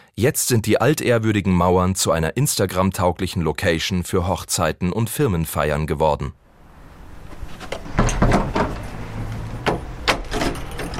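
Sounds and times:
speech: 0.2 - 6.4
low rumbling scrape: 6.5 - 10.9
heavy door creaking and thudding as it is pulled open: 6.6 - 10.9
sharp wooden knocks and clatters: 7.2 - 10.9.

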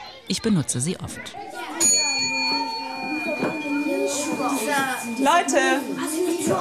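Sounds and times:
murmur of voices talking: 0.0 - 6.5
speech: 0.3 - 1.7, 3.2 - 6.5
singing bowl struck and ringing: 1.8 - 6.5.

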